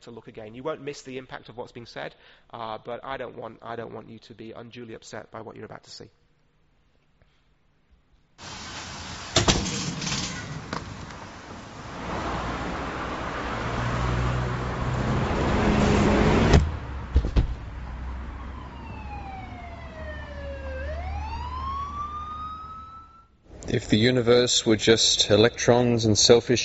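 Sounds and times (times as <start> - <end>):
speech: 0.0 - 6.2, 23.8 - 26.6
bus crash impact: 8.4 - 13.9, 14.7 - 17.8
busy road traffic rumbling: 8.4 - 22.5
siren wailing: 18.0 - 23.4.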